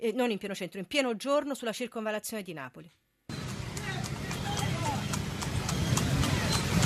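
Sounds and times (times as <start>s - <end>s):
speech: 0.0s - 3.1s
horses galloping on pavement in an illegal street horse race in Naples: 3.3s - 6.8s
street noise on the ring road of Naples: 3.3s - 6.8s.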